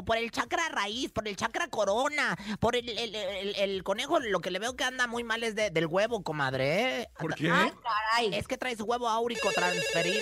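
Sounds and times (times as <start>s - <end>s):
speech: 0.0s - 10.2s
steady electronic telephone ringtone: 9.4s - 10.2s.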